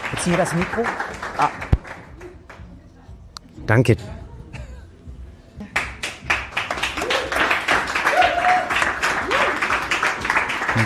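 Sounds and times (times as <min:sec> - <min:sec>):
audience applause: 0:00.0 - 0:02.1, 0:06.0 - 0:10.8
speech: 0:00.1 - 0:01.7, 0:03.7 - 0:04.2
voices cheering: 0:07.0 - 0:09.8.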